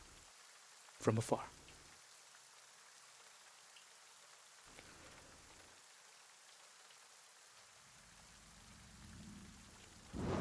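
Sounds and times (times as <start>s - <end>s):
rain hissing: 0.0s - 10.3s
speech: 1.0s - 1.6s
thunder crack: 10.1s - 10.3s.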